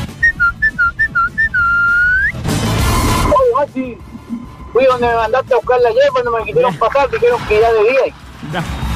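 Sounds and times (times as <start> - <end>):
person whistling a signal: 0.2 - 3.5
speech: 5.0 - 8.8.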